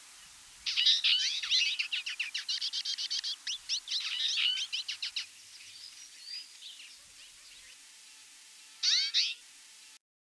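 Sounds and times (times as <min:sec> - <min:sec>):
twite Acanthis flavirostris flavirostris rattling twitter in Russia: 0:00.1 - 0:07.9, 0:08.8 - 0:09.5.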